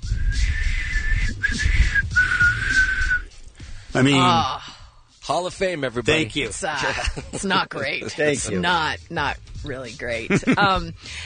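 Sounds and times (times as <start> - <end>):
person whistling a breathy tune: 0.0 - 3.4
speech: 4.0 - 4.6, 5.3 - 11.2
laughter: 6.6 - 8.5, 10.2 - 11.0.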